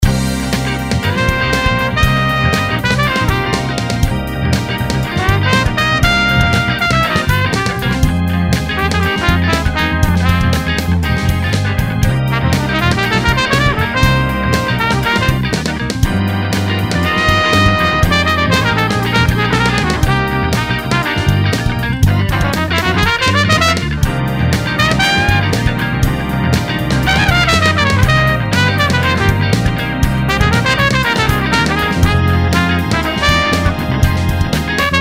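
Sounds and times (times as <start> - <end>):
solo trumpet playing funk in C: 0.5 - 34.9.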